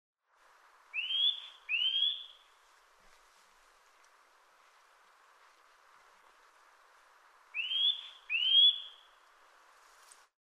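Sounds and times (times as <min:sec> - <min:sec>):
Eurasian nuthatch calls of upslurred whistled notes: 0:01.0 - 0:02.4, 0:07.6 - 0:09.2.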